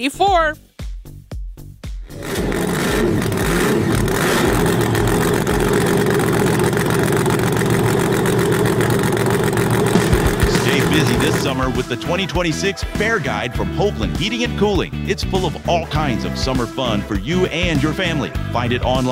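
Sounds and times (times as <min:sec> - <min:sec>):
speech: 0:00.0 - 0:01.2, 0:11.2 - 0:19.1
vocal impression of a monster truck engine roaring: 0:02.1 - 0:12.7.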